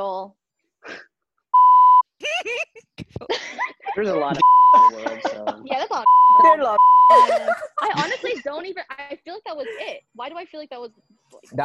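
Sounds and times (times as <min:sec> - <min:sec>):
censor beep over a name: 0:01.6 - 0:02.0, 0:04.4 - 0:05.0, 0:06.0 - 0:07.3
laughter: 0:02.2 - 0:10.0
speech: 0:04.0 - 0:11.6.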